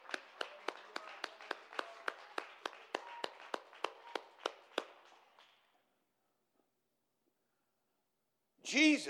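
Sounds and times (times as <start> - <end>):
group clapping hands in praise of God: 0.0 - 5.8
speech: 8.7 - 9.0.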